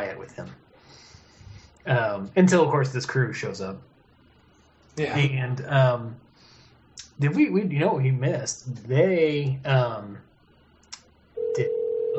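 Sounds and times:
speech: 0:00.2 - 0:01.0, 0:01.8 - 0:03.9, 0:05.0 - 0:06.2, 0:07.2 - 0:10.3, 0:11.6 - 0:12.1
telephone ringing: 0:11.4 - 0:12.1.

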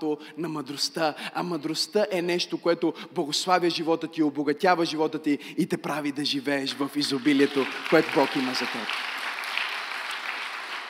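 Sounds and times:
speech: 0:00.0 - 0:09.1
church audience applauding during a sermon: 0:06.9 - 0:10.8.

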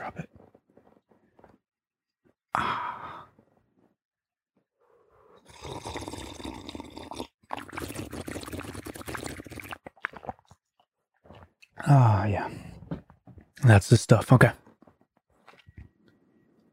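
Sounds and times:
water pouring: 0:05.5 - 0:10.6
speech: 0:11.8 - 0:12.6, 0:13.6 - 0:14.6.

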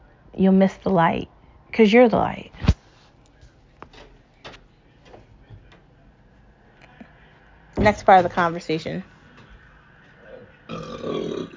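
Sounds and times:
speech: 0:00.3 - 0:02.7, 0:07.8 - 0:09.1
man belching loudly and deeply: 0:10.7 - 0:11.5.

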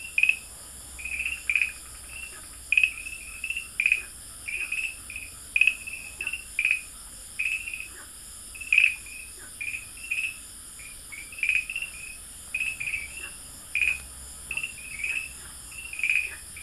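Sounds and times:
farmland green tree frog chirps: 0:00.0 - 0:16.6.

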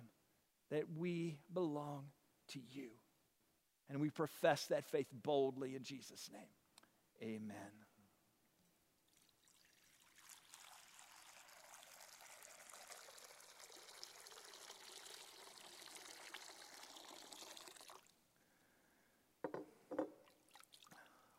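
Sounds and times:
speech: 0:00.7 - 0:03.0, 0:03.9 - 0:06.6, 0:07.2 - 0:07.9
water poured into baptismal font: 0:09.1 - 0:18.1.

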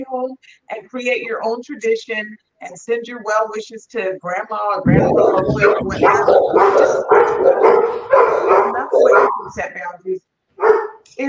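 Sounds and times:
speech: 0:00.0 - 0:11.2
several dogs barking: 0:04.9 - 0:09.7, 0:10.6 - 0:11.1.

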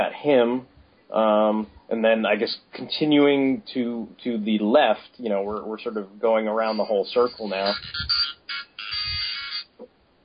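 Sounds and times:
speech: 0:00.0 - 0:08.4
electronic phone ringtone: 0:06.7 - 0:09.7.

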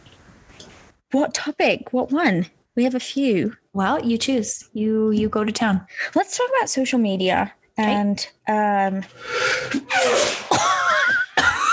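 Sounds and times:
speech: 0:01.1 - 0:10.8
man sneezing: 0:09.7 - 0:10.6.

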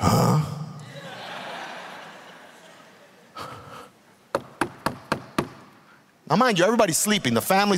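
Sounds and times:
laughter: 0:00.8 - 0:03.8
knocking on a door: 0:04.4 - 0:05.6
speech: 0:06.3 - 0:07.7.

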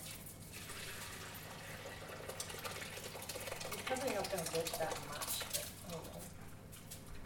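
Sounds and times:
curds and whey pouring into butter muslin: 0:00.5 - 0:05.6
faint wet drips of whey: 0:02.0 - 0:06.2
speech: 0:04.2 - 0:05.4.

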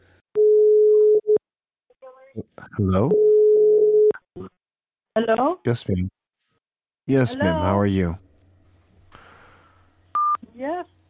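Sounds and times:
phone line tone after a caller hangs up: 0:00.4 - 0:01.4, 0:03.1 - 0:04.1
speech: 0:02.8 - 0:03.3, 0:05.2 - 0:06.2, 0:07.1 - 0:08.2.

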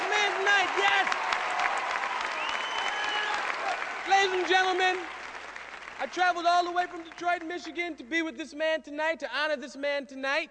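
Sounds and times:
audience applause: 0:00.0 - 0:07.5
speech: 0:06.0 - 0:10.4.

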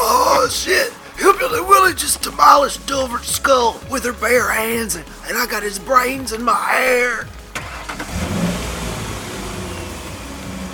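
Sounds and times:
speech: 0:00.5 - 0:07.4
car engine revving as vehicle pulls away: 0:07.1 - 0:10.7.

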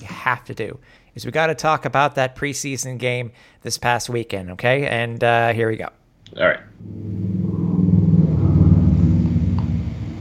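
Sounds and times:
speech: 0:00.3 - 0:07.4
car passing by outside a house: 0:06.8 - 0:10.2.

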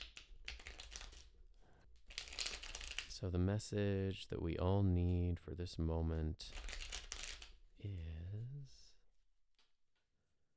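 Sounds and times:
tarot cards being shuffled with papery riffling and flicking: 0:00.0 - 0:01.3, 0:02.0 - 0:03.1, 0:06.5 - 0:07.6
speech: 0:03.2 - 0:06.7, 0:07.8 - 0:08.9.

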